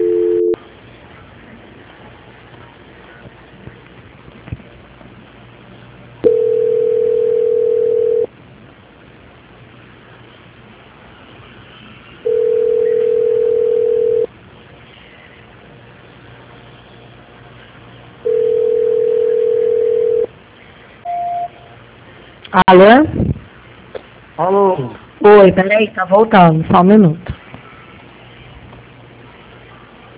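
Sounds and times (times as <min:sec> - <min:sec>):
telephone call-transfer tones: 0:00.0 - 0:00.6, 0:06.2 - 0:08.3, 0:12.2 - 0:14.3, 0:18.3 - 0:20.3
speech: 0:22.6 - 0:23.3, 0:24.4 - 0:27.2.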